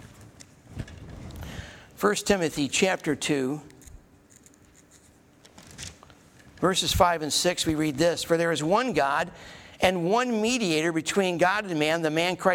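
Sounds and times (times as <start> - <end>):
speech: 2.0 - 3.7, 6.6 - 12.5
book pages being turned: 3.7 - 6.6.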